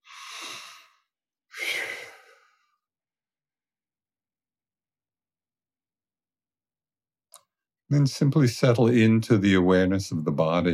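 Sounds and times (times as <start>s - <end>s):
deep breaths drawn slowly for settling in: 0.0s - 2.9s
speech: 7.9s - 10.7s.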